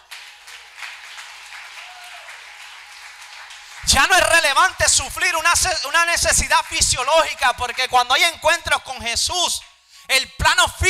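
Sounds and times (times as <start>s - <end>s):
audience applauding: 0.0s - 8.3s
speech: 3.8s - 10.8s.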